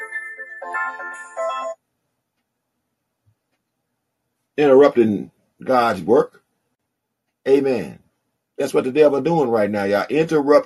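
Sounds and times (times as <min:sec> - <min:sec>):
melodic phone ringtone: 0:00.0 - 0:01.8
speech: 0:00.6 - 0:01.8, 0:04.6 - 0:06.4, 0:07.4 - 0:08.0, 0:08.6 - 0:10.6.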